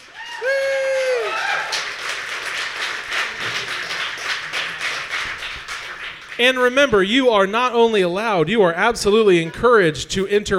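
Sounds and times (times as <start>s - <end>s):
loud rising whoop: 0.0s - 1.9s
live show audience applause: 0.0s - 6.8s
speech: 6.4s - 10.5s.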